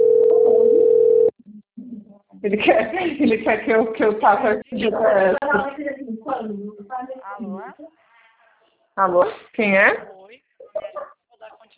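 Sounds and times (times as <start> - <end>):
telephone tones while a number is keyed in: 0.0 - 1.4
speech: 2.4 - 8.0, 9.0 - 10.2.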